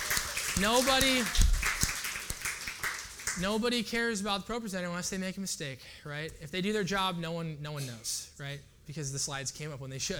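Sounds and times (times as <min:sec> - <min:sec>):
scattered round of applause from an audience: 0:00.0 - 0:03.5
speech: 0:00.6 - 0:01.4, 0:03.4 - 0:10.1.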